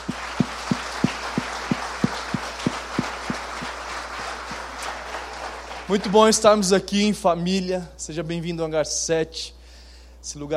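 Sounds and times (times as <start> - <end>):
audience clapping rhythmically at an evening church service: 0.0 - 6.7
speech: 5.9 - 9.6, 10.2 - 10.5.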